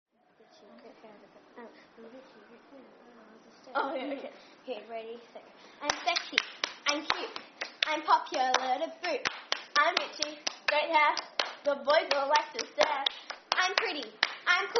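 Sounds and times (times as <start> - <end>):
hands clapping: 5.8 - 14.7.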